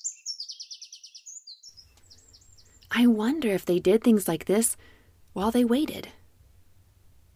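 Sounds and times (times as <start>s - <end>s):
birds singing: 0.0s - 2.9s
speech: 2.9s - 6.2s.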